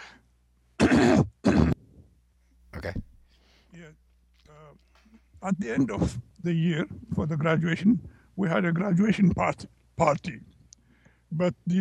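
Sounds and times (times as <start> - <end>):
faint breathy sound: 0.0 - 0.3, 3.2 - 3.8, 8.0 - 8.4, 10.8 - 11.3
person clearing throat: 0.8 - 1.8
speech: 4.8 - 10.5, 11.3 - 11.7.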